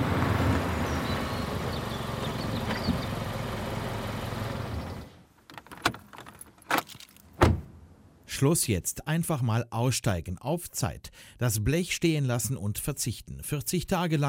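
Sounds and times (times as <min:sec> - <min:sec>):
car engine running: 0:00.0 - 0:05.2
keys jingling: 0:05.5 - 0:07.4
speech: 0:08.4 - 0:14.2.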